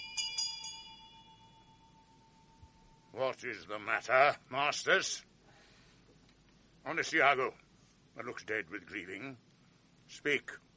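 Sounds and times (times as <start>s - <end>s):
alarm bell clanging: 0.0s - 3.2s
speech: 3.2s - 5.3s, 6.8s - 7.6s, 8.2s - 9.5s, 10.1s - 10.6s.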